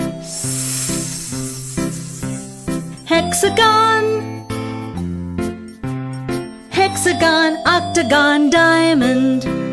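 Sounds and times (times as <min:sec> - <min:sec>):
snake hissing: 0:00.0 - 0:03.1
speech: 0:03.1 - 0:04.3, 0:07.0 - 0:09.6.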